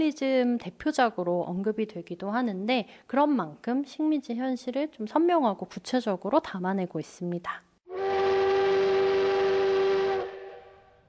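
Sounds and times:
speech: 0:00.0 - 0:07.7
steam train whistle: 0:07.9 - 0:11.0.

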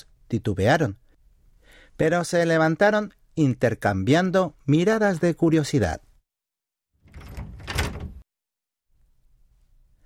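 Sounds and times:
speech: 0:00.0 - 0:01.0, 0:02.0 - 0:06.1
door opened carefully onto a hallway: 0:07.0 - 0:08.2.

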